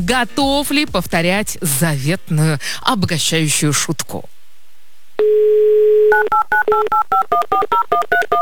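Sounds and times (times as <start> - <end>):
speech: 0.0 - 4.3, 6.2 - 8.4
telephone dial tone: 5.2 - 7.3.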